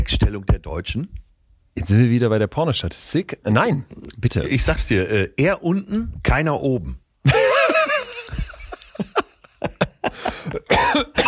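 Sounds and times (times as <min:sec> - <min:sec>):
speech: 0:00.1 - 0:01.2, 0:01.8 - 0:07.4
person chuckling: 0:07.3 - 0:11.2
person laughing: 0:07.3 - 0:11.2
person coughing: 0:10.1 - 0:11.2.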